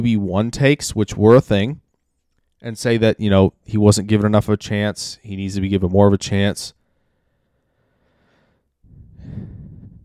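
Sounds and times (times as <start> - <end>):
speech: 0.0 - 1.8, 2.6 - 6.8
deep breath: 6.8 - 10.0.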